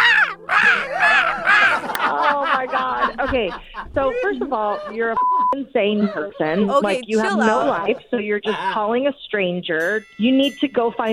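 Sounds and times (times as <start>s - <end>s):
crow cawing: 0.0s - 2.0s
laughter: 0.0s - 9.2s
speech: 3.3s - 11.1s.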